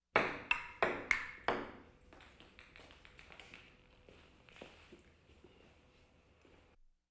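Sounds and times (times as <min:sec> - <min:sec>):
table tennis missed serve: 0:00.1 - 0:03.9.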